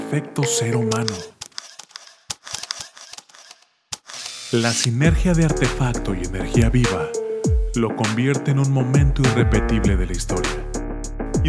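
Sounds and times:
speech: 0.1s - 1.4s, 4.5s - 10.7s
camera shutter clicks: 0.9s - 4.9s.

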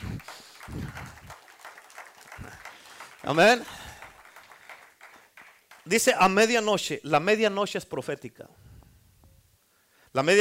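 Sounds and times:
audience crowd applauding: 0.0s - 6.6s
speech: 3.2s - 3.8s, 5.9s - 8.6s, 10.1s - 10.4s.

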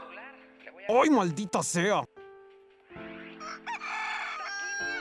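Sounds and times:
speech: 0.9s - 2.1s
rooster crowing: 3.4s - 4.9s.

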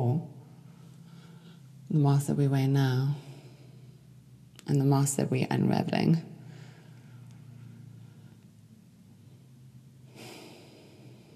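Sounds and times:
deep breathing in and out: 0.4s - 1.8s, 3.2s - 4.3s, 6.3s - 11.3s
speech: 1.9s - 3.3s, 4.7s - 6.3s.

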